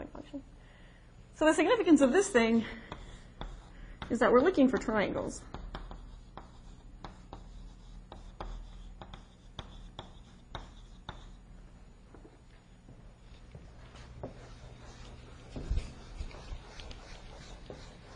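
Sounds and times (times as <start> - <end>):
speech: 0.2 - 0.6, 1.4 - 3.0, 4.1 - 5.6
writing strokes on a board drawing triangles: 2.9 - 11.4, 13.8 - 18.1.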